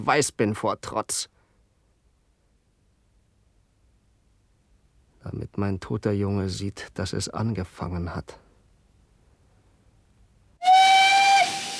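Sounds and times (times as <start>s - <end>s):
speech: 0.0s - 1.4s, 5.2s - 8.4s
steam train whistle as the train departs: 10.6s - 11.7s.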